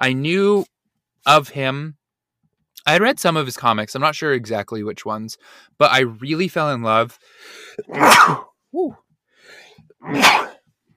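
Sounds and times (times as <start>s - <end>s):
speech: 0.0s - 2.0s, 2.8s - 10.5s
quick breathy intake: 7.2s - 8.0s, 9.4s - 9.8s
person sneezing: 7.6s - 8.9s, 10.0s - 10.6s.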